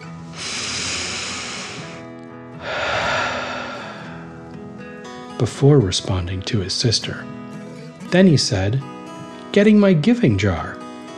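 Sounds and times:
narrator taking a deep breath in and out: 0.3 - 4.6
speech: 5.4 - 7.5, 8.1 - 8.9, 9.5 - 10.8.

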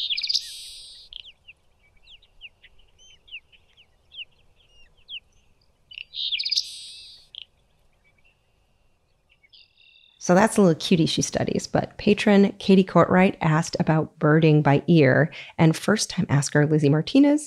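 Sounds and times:
soft seaside sparrow chirps: 0.0 - 10.2
seaside sparrow song: 0.0 - 10.3
speech: 10.3 - 17.4.

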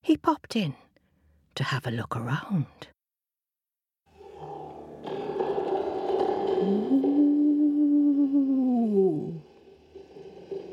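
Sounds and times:
speech: 0.1 - 0.8, 1.6 - 3.0, 6.6 - 7.1
furious giant roaring out of a cave in Scotland: 4.1 - 10.6.

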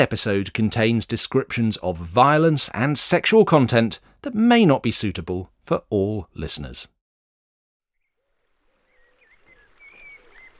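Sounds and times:
speech: 0.0 - 7.0
faint thin bird chirps: 7.9 - 10.5
water lapping and sloshing beneath a small boat: 8.6 - 10.5.

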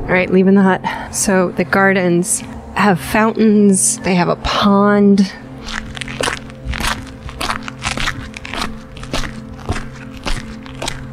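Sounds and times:
speech: 0.1 - 5.8
footsteps crunching over gravel in outdoor gardens: 5.6 - 11.1.

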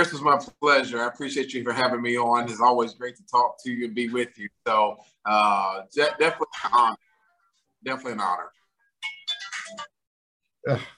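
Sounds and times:
speech: 0.0 - 7.1, 7.8 - 8.6, 10.6 - 10.9
phone ringtone with bright melodic tones: 9.0 - 10.0.

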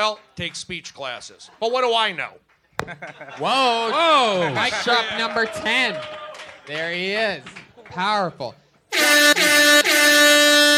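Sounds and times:
speech: 0.0 - 10.4
laughter: 2.8 - 5.4
air horn blasts: 8.9 - 10.7.

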